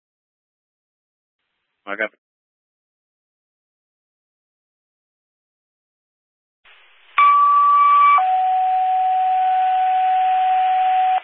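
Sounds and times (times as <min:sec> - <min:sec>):
speech: 0:01.8 - 0:02.2
faint radio hiss: 0:06.7 - 0:11.2
two-tone fire dispatch paging alert: 0:07.2 - 0:11.2.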